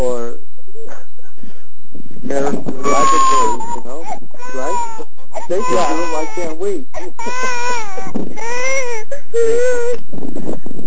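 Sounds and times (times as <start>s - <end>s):
speech: 2.3s - 4.8s, 5.5s - 8.6s, 9.4s - 10.6s
young child crying in wavering wails: 2.8s - 6.6s, 7.2s - 10.0s.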